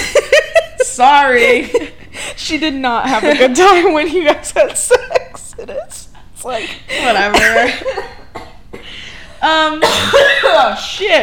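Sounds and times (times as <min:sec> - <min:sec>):
speech: 0:01.0 - 0:08.2, 0:09.4 - 0:11.2
harsh coughs with a breathy rasp: 0:07.4 - 0:09.0, 0:09.8 - 0:10.8.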